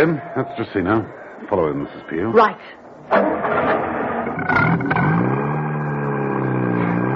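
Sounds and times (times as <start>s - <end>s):
speech: 0.0s - 3.8s, 4.5s - 5.4s
open sports car engine starting: 3.1s - 7.1s.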